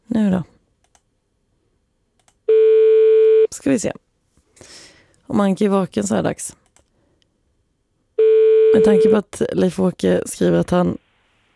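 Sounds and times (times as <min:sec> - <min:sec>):
electronic telephone tone as a number is dialed to place a call: 0:02.5 - 0:03.5, 0:08.2 - 0:09.2
speech: 0:03.6 - 0:04.1, 0:05.3 - 0:06.6, 0:08.7 - 0:11.0.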